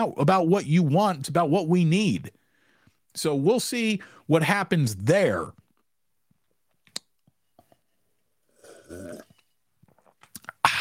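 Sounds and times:
speech: 0.0 - 2.4, 3.2 - 5.6
lip and mouth clicks: 6.8 - 7.4, 9.9 - 10.8
sharp burst of breath: 10.6 - 10.8.

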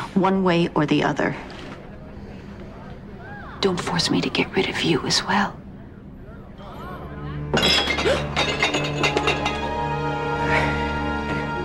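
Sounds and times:
steady tonal background: 0.0 - 11.6
speech: 0.2 - 1.5, 3.6 - 5.6
drinking glass dropped and shattering on the floor: 7.5 - 9.9.

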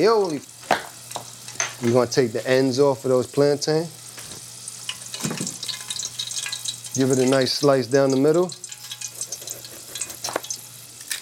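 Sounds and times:
speech: 0.0 - 0.6, 1.8 - 4.0, 7.0 - 8.6
low electrical hum: 0.0 - 11.2
warm tap water running for soaking green plantains: 0.0 - 11.2.

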